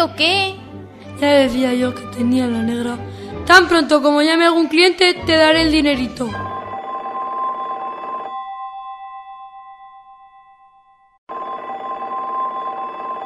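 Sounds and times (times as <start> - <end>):
speech: 0.0 - 0.6, 1.2 - 6.5
old-style telephone bell ringing: 6.5 - 13.2.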